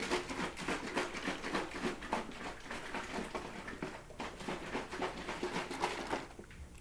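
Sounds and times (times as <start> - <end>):
fruit drink sloshing inside a bottle being shaken: 0.0 - 6.7.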